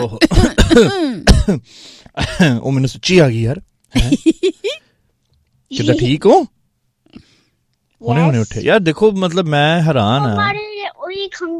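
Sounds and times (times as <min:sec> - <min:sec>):
person clearing throat: 0:00.0 - 0:02.4
person who has just woken up coughing: 0:00.0 - 0:02.5
speech: 0:00.0 - 0:04.8, 0:05.7 - 0:06.6, 0:08.0 - 0:11.5.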